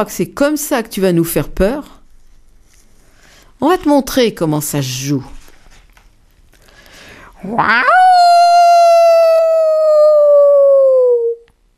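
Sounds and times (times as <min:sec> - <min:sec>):
speech: 0:00.0 - 0:02.0, 0:03.6 - 0:05.4, 0:07.4 - 0:08.2
person imitating a wolf howl: 0:07.4 - 0:11.5.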